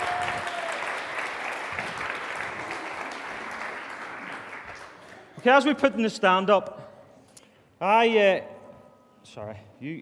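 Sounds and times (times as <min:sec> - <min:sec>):
room full of people applauding: 0:00.0 - 0:05.8
speech: 0:05.4 - 0:06.8, 0:07.8 - 0:08.5, 0:09.2 - 0:10.0.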